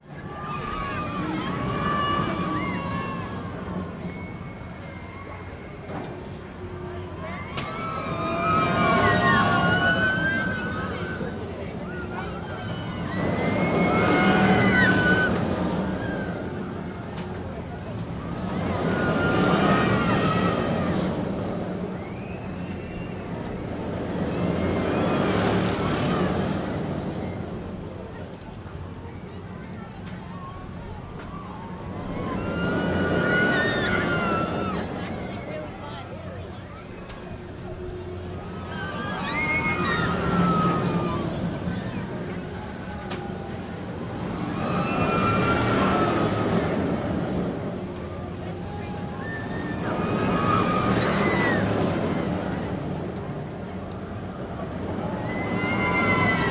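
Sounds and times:
fair ride swirling and decelerating: 0:00.0 - 0:56.4
voices: 0:00.0 - 0:56.4.

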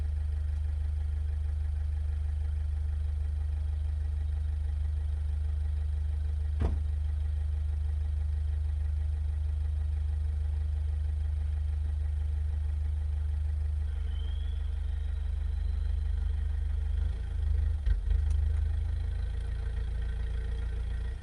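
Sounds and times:
car driving and stopping: 0:00.1 - 0:21.1.

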